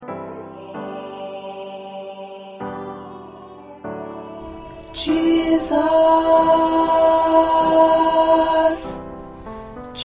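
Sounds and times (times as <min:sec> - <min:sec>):
alto voices in a choir: 0:00.0 - 0:10.0.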